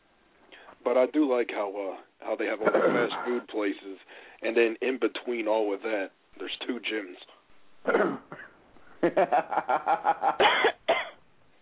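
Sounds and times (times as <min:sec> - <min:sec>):
speech: 0:00.8 - 0:10.8
woman coughing and choking: 0:02.7 - 0:03.4, 0:07.9 - 0:08.6, 0:10.4 - 0:11.2
laughter: 0:09.0 - 0:10.4.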